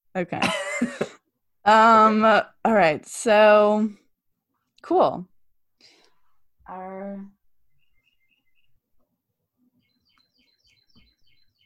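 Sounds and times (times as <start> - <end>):
speech: 0.2 - 4.0, 4.8 - 5.3, 6.7 - 7.3
birds chirping in short high tweets: 7.2 - 11.6.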